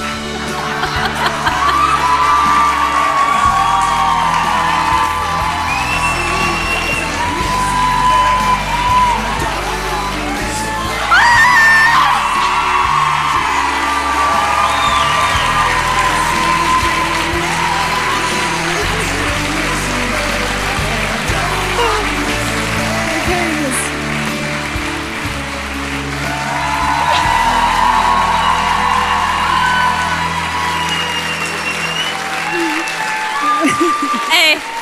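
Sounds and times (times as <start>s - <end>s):
laughter: 0.0s - 23.8s, 26.4s - 30.8s, 31.4s - 34.7s
dense loud applause-like noise: 0.0s - 34.7s
large live crowd cheering and whooping: 0.0s - 34.7s
scattered shouts and high yells from a crowd: 0.6s - 19.2s, 26.4s - 31.2s.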